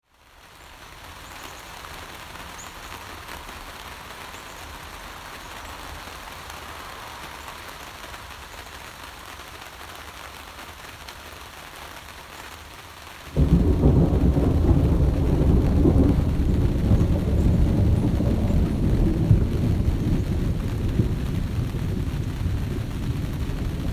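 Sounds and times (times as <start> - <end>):
raindrops near the base of Roaring Mountain: 0.0 - 23.9
thunder near the base of Roaring Mountain: 13.4 - 23.9.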